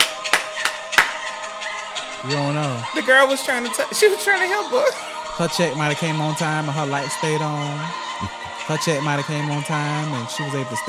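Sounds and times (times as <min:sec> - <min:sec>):
people clapping: 0:00.0 - 0:02.1
laughter: 0:00.5 - 0:05.2, 0:07.3 - 0:10.8
speech: 0:02.2 - 0:10.8.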